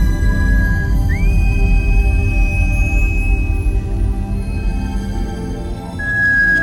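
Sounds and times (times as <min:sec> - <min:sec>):
alien creature's thin high communication whistle: 0:00.0 - 0:04.0, 0:06.0 - 0:06.6
loud dense low rumble: 0:00.0 - 0:06.0.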